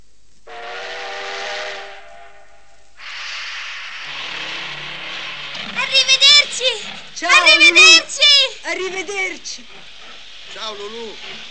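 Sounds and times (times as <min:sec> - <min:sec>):
steam train whistle as the train passes: 0:00.5 - 0:05.6
bursts of escaping steam from a steam train: 0:00.5 - 0:11.5
low chugging rumble of a steam train: 0:03.7 - 0:11.5
speech: 0:06.0 - 0:11.5.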